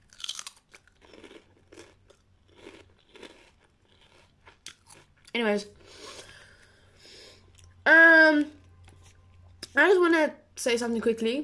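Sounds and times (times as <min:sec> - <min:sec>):
crunchy chip being bitten and chewed: 0:00.0 - 0:05.4
speech: 0:05.4 - 0:06.0, 0:07.9 - 0:08.6, 0:09.8 - 0:11.4.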